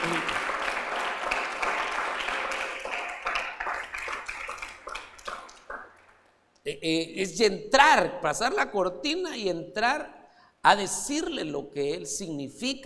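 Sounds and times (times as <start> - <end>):
audience applause: 0.0 - 6.1
speech: 6.7 - 12.8.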